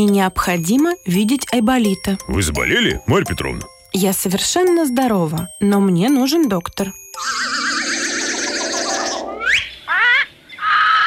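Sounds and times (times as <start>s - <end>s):
speech: 0.0s - 7.6s
parrot squawking: 7.2s - 11.0s.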